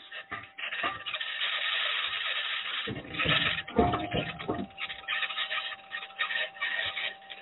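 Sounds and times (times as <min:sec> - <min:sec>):
Mars rover aluminum wheels grinding and crunching over rocks on the surface of Mars: 0:00.0 - 0:07.4
steady hum from the Mars rover's electronics: 0:00.0 - 0:07.4
clattering bursts from Mars rover wheels over rocks: 0:00.2 - 0:06.1
Mars rover chassis, spring, actuator and suspension noises: 0:02.9 - 0:04.9.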